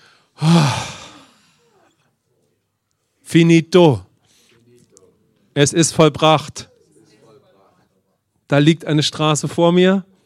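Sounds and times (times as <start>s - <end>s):
deep breath with sighing exhale: 0.0s - 1.9s
speech: 3.3s - 4.1s, 5.6s - 6.7s, 8.5s - 10.1s.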